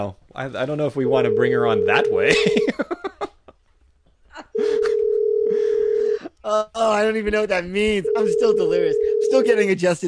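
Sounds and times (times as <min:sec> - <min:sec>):
speech: 0:00.0 - 0:03.2, 0:06.5 - 0:10.0
electronic telephone tone: 0:01.0 - 0:02.3, 0:05.0 - 0:06.2, 0:08.1 - 0:09.4
laughter: 0:02.2 - 0:03.5, 0:04.3 - 0:05.1.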